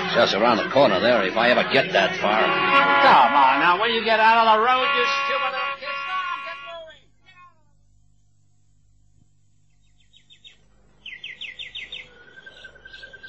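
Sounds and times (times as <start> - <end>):
steady low hum: 0.0 - 13.2
speech: 0.1 - 5.6
caged songbirds chirping and singing indoors: 9.7 - 13.2.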